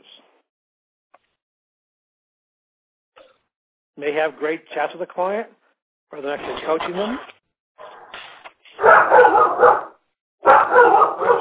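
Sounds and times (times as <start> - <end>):
speech: 4.0 - 7.4
male dog barking: 8.8 - 11.3.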